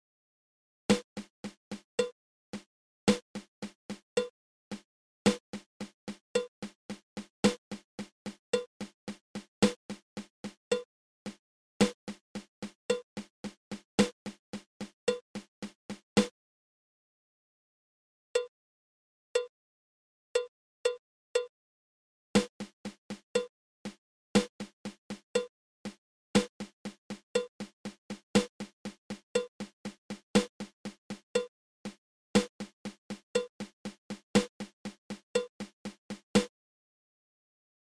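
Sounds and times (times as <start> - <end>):
triple paradiddle drum rudiment: 0.9 - 16.3, 22.4 - 36.5.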